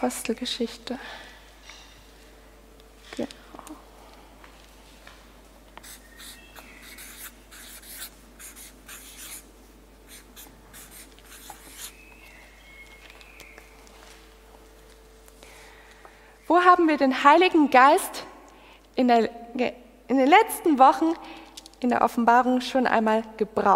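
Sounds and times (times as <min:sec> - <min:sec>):
speech: 0:00.0 - 0:01.3, 0:03.2 - 0:03.4, 0:16.5 - 0:18.2, 0:19.0 - 0:23.7
low hum: 0:00.0 - 0:23.7
pen strokes writing notes by hand: 0:05.8 - 0:09.4, 0:10.1 - 0:12.0.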